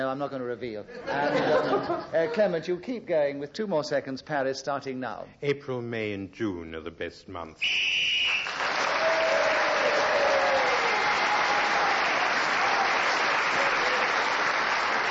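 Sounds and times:
speech: 0.0 - 8.3
laughter: 0.9 - 2.6
studio audience applause: 8.2 - 15.1.

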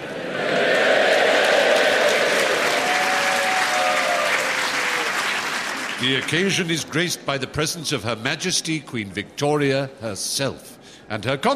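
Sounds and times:
large crowd applauding in a big hall: 0.4 - 7.0
speech: 6.0 - 11.5.

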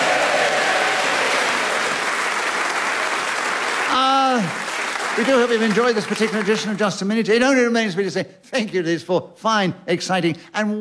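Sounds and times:
loud applause from a large audience: 0.0 - 6.8
speech: 5.2 - 10.7.

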